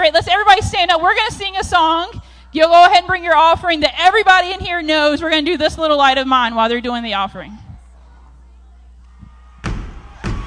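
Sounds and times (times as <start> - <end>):
speech: 0.0 - 7.6
audience stomping their feet on a floor: 9.2 - 10.4.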